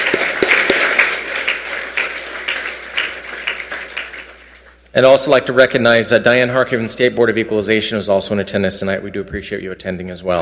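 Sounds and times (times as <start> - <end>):
room full of people applauding: 0.0 - 4.8
speech: 5.0 - 10.4.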